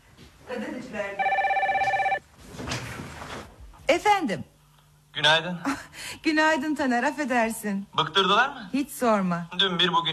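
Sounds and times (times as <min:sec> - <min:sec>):
speech: 0:00.6 - 0:01.4, 0:04.2 - 0:04.5, 0:05.2 - 0:10.1
telephone ringing with a trilling electronic bell: 0:01.2 - 0:02.2.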